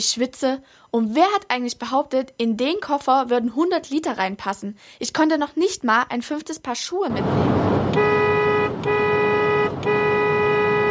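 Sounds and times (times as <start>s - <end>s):
speech: 0.0s - 9.0s
car horn blaring in traffic: 7.5s - 10.8s.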